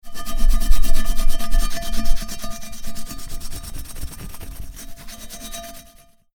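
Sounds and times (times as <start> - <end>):
pot being cleaned: 0.1 - 6.1.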